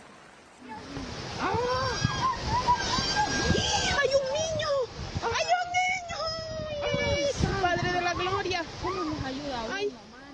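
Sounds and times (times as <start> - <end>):
turbulent river current rushing: 0.0 - 10.3
raised agitated voices calling out: 0.8 - 7.4.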